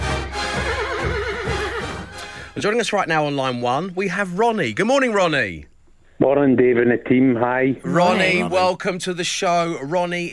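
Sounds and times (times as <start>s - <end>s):
horse neighing with quavering pitch: 0.7s - 2.0s, 7.9s - 8.7s
speech: 2.6s - 10.3s.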